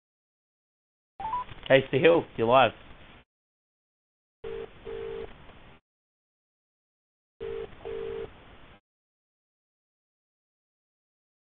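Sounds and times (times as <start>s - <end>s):
speech: 1.7s - 2.8s
hissy band-limited phone line: 4.4s - 5.3s, 7.4s - 8.3s
telephone calling tone heard through a phone line: 4.4s - 5.3s, 7.4s - 8.3s.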